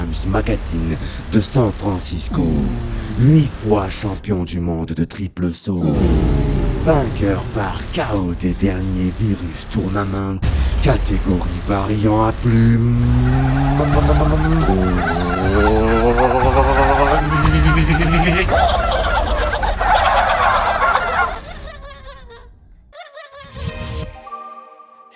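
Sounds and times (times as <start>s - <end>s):
speech: 0.1s - 16.7s, 17.7s - 19.0s
laughter: 12.6s - 23.8s
turkey gobbling: 13.2s - 21.7s.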